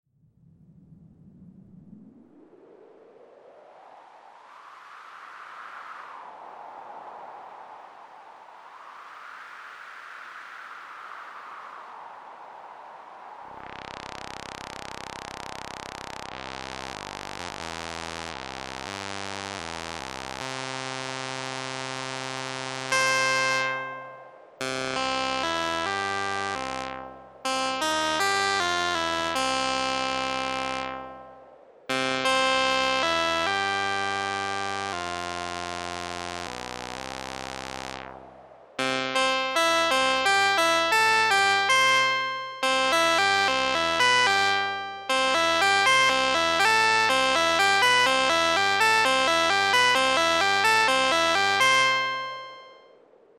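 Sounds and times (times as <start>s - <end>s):
Korg Sigma synthesizer: 11.4s - 52.9s.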